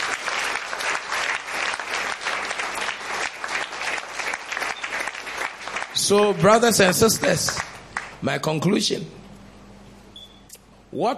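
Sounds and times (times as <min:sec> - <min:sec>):
audience clapping hands in applause: 0:00.0 - 0:08.2
speech: 0:06.1 - 0:07.6, 0:08.2 - 0:09.2, 0:10.9 - 0:11.1.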